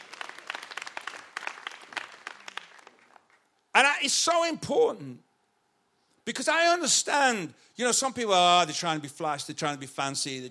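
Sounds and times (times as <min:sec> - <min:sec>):
audience applause: 0:00.0 - 0:03.4
speech: 0:03.8 - 0:05.3, 0:06.3 - 0:10.4.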